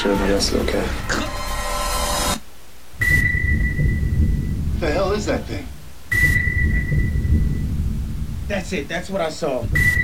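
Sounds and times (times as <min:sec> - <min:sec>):
speech: 0:00.0 - 0:01.3, 0:08.5 - 0:10.0
thin steady whine: 0:01.4 - 0:10.0
rumbling storm noise with heavy low roar: 0:03.0 - 0:10.0.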